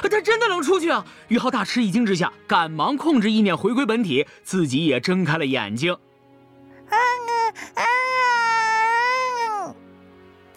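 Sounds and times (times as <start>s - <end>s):
speech: 0.1s - 6.1s
baby girl crying angrily: 6.8s - 9.8s.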